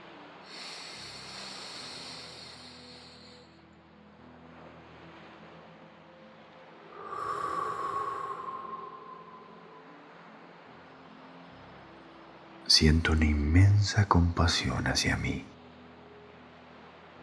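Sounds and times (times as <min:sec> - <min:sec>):
deep breathing: 0:00.5 - 0:03.6, 0:07.0 - 0:10.0
speech: 0:12.8 - 0:15.5.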